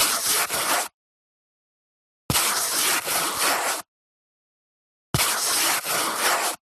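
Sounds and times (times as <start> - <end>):
paintbrush painting on canvas: 0.1 - 0.9, 2.4 - 3.9, 5.2 - 6.6.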